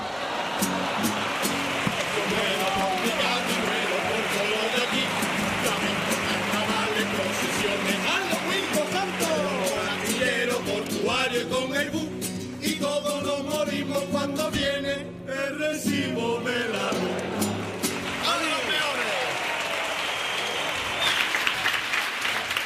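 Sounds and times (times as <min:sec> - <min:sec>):
large audience applause: 0:00.0 - 0:10.9, 0:17.0 - 0:22.6
group singing a song: 0:01.8 - 0:17.6.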